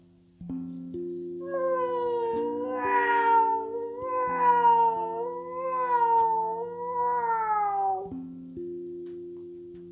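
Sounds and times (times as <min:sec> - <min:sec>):
sustained music chords: 0:00.0 - 0:09.9
cat meowing: 0:01.4 - 0:08.1.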